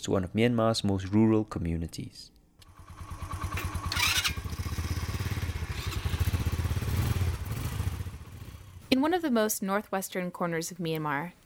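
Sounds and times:
speech: 0:00.0 - 0:02.4, 0:08.9 - 0:11.4
motorbike engines revving in northwestern Myanmar: 0:02.7 - 0:09.0.

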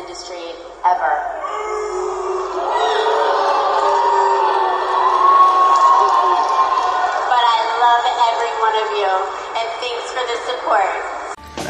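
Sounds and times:
speech: 0:00.2 - 0:01.8, 0:08.6 - 0:11.2
scattered yells: 0:01.4 - 0:09.4
large audience booing at an adult entertainment awards ceremony: 0:01.4 - 0:11.4.

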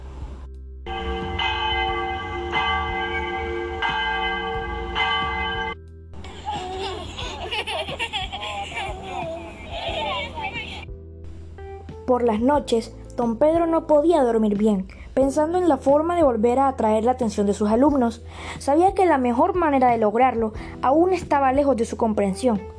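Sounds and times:
school hand bell rung by a teacher: 0:00.9 - 0:05.8
children laughing and shouting: 0:06.2 - 0:10.8
speech: 0:12.1 - 0:22.7.

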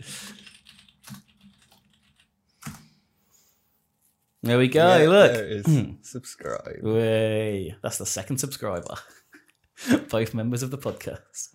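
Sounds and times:
keystrokes on a computer keyboard typing a search: 0:00.3 - 0:02.8
speech: 0:04.4 - 0:09.2, 0:10.1 - 0:11.5.

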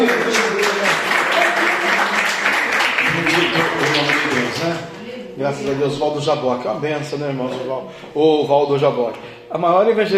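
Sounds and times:
audience applause: 0:00.0 - 0:04.8
murmur of voices: 0:00.0 - 0:10.1
speech: 0:05.4 - 0:10.1.

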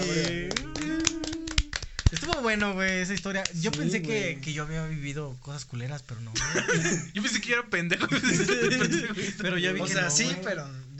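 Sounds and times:
people clapping their hands: 0:00.0 - 0:04.2
speech: 0:02.1 - 0:10.9
laughter: 0:06.4 - 0:07.1, 0:07.9 - 0:09.7.

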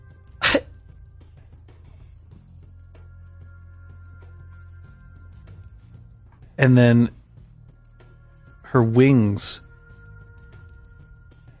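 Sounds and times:
small winged creature coughing: 0:00.4 - 0:00.7
speech: 0:06.6 - 0:07.2, 0:08.7 - 0:09.7.

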